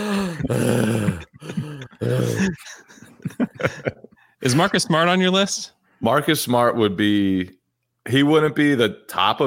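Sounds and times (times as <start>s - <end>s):
speech: 0.0s - 1.2s, 4.4s - 9.4s
man's voice imitating out-of-breath panting of a basketball player: 0.0s - 2.9s
laughter: 0.9s - 5.2s.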